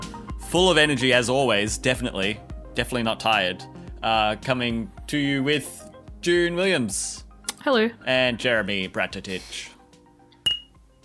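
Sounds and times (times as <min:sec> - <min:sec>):
speech: 0:00.5 - 0:09.7
bright glass clink: 0:10.4 - 0:10.8.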